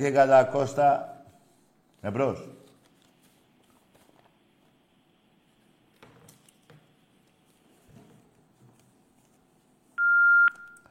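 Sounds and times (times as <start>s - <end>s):
speech: 0.0s - 1.1s, 2.0s - 2.6s
steady telephone beep on a quiet line: 10.0s - 10.8s.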